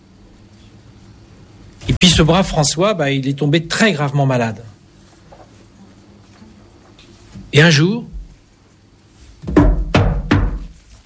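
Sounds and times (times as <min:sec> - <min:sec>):
speech: 0:01.9 - 0:04.7, 0:07.6 - 0:08.1
firm knocks on a wooden door: 0:09.4 - 0:10.8.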